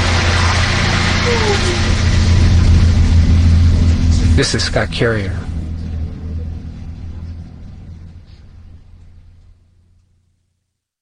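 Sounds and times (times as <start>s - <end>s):
shuttle bus engine droning in a canyon: 0.0s - 10.4s
speech: 4.4s - 5.5s.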